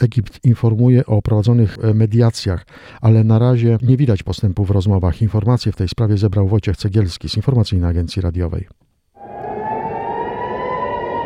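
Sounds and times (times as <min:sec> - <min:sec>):
speech: 0:00.0 - 0:08.8
air raid warning siren wailing at night in Tel Aviv during rocket fire: 0:09.2 - 0:11.2.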